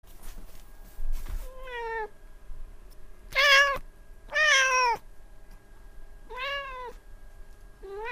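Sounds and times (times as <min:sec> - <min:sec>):
faint background hum: 0:00.0 - 0:08.1
cat meowing: 0:03.3 - 0:05.0, 0:06.3 - 0:07.0, 0:07.8 - 0:08.1.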